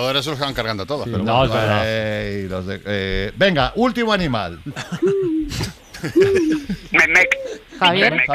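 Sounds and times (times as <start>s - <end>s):
faint noise: 0.0s - 8.3s
speech: 0.0s - 8.3s
laughter: 4.6s - 8.3s
owl hooting: 5.0s - 7.8s.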